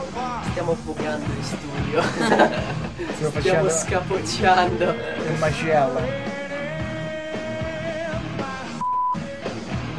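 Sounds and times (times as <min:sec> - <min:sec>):
loud live rock recording: 0:00.0 - 0:09.9
speech: 0:00.6 - 0:06.3
laughter: 0:01.7 - 0:06.2
censor bleep: 0:08.8 - 0:09.3.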